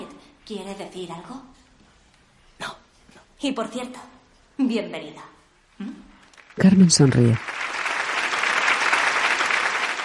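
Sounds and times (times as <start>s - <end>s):
speech: 0.5s - 1.7s, 3.4s - 6.0s, 6.6s - 7.6s
large crowd applauding in a gymnasium: 6.3s - 10.0s.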